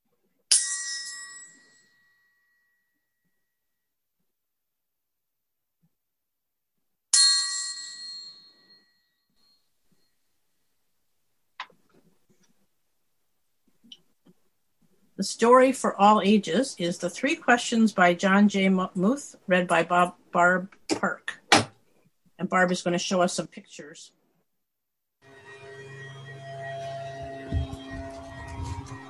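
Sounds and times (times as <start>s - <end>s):
bright meditation chime struck: 0.6s - 3.6s, 25.2s - 29.0s
speech: 15.2s - 21.4s, 22.4s - 24.2s.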